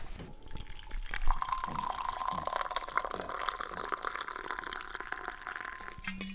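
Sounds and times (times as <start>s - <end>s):
very hot coffee pouring into cups: 0.2s - 6.3s
small clink: 6.0s - 6.3s.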